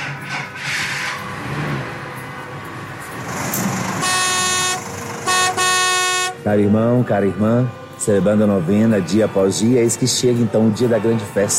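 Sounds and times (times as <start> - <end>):
rumbling truck engine: 0.0 - 10.4
road noise: 0.0 - 11.5
truck horn honking: 3.2 - 6.6
speech: 6.5 - 11.5.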